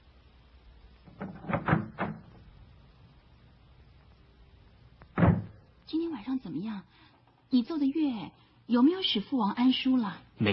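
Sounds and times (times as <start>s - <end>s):
door being opened with wooden clunks and rattles: 1.1s - 2.5s, 5.1s - 5.6s
speech: 5.9s - 10.5s.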